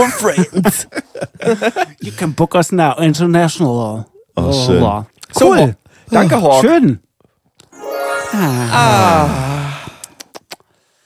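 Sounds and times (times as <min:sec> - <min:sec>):
speech: 0:00.0 - 0:07.1, 0:08.3 - 0:09.6
heavy breathing with a long voiced exhale: 0:08.7 - 0:11.0.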